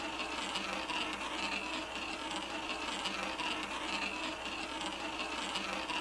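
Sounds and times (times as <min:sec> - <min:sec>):
ball rolling on European roulette wheel: 0:00.0 - 0:05.9.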